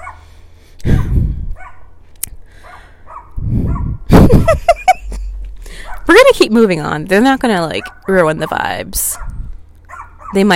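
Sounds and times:
dog barking: 0:00.0 - 0:00.3, 0:01.0 - 0:01.9, 0:02.6 - 0:04.0, 0:05.8 - 0:06.1, 0:07.8 - 0:08.1, 0:09.2 - 0:10.4
dog yelping: 0:00.0 - 0:00.3, 0:00.9 - 0:01.9, 0:02.6 - 0:04.0, 0:07.8 - 0:08.2, 0:09.2 - 0:10.5
low rumbling noise: 0:00.0 - 0:09.9
laughter: 0:04.1 - 0:05.4
speech: 0:06.4 - 0:09.3, 0:10.3 - 0:10.5.

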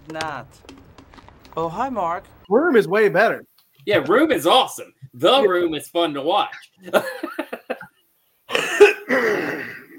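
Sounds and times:
speech: 0:00.1 - 0:00.8, 0:01.6 - 0:07.4
person coughing: 0:08.5 - 0:09.9.

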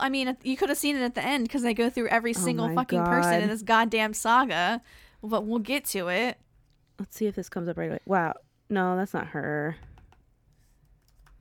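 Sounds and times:
speech: 0:00.0 - 0:06.4, 0:07.0 - 0:09.9
computer keyboard typing: 0:10.8 - 0:11.3.

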